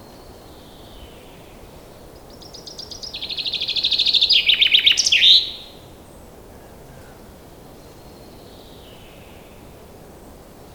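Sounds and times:
common chaffinch Fringilla coelebs song phrase of rapid repeated notes: 2.4 - 5.6.

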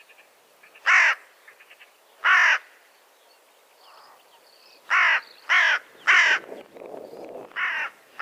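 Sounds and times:
carrion crow Corvus corone giving loud harsh caws: 0.8 - 1.2, 2.2 - 2.7, 4.9 - 6.4, 7.6 - 8.2.

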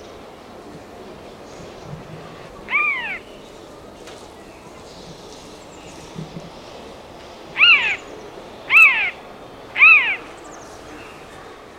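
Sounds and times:
Eurasian jay giving a harsh rasping call: 2.4 - 3.2, 7.6 - 8.0, 8.7 - 9.2, 9.8 - 10.3.

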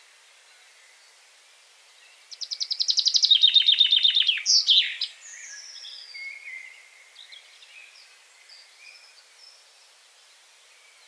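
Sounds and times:
common chaffinch Fringilla coelebs singing: 2.0 - 9.6.

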